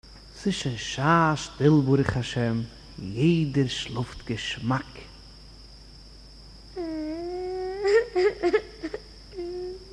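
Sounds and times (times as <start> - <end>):
faint steady hiss: 0.0 - 9.9
speech: 0.4 - 5.1, 8.2 - 8.7
child whimpering and crying: 6.8 - 9.9.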